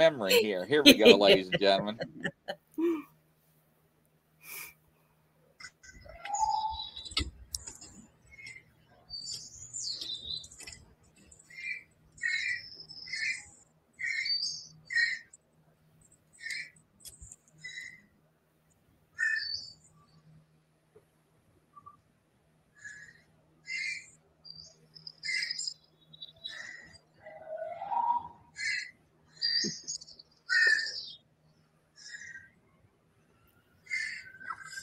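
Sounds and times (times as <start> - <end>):
speech: 0.0 - 2.5
laughter: 0.0 - 3.0
high bird-like chirps and whistles in an outdoor recording: 5.8 - 10.8, 11.4 - 15.3, 19.2 - 20.2, 22.8 - 31.2, 33.8 - 34.8.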